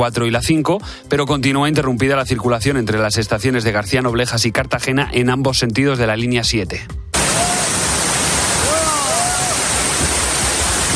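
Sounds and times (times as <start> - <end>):
speech: 0.0 - 7.0
heavy rain on tents of an encampment at Puerta del Sol: 7.2 - 10.9.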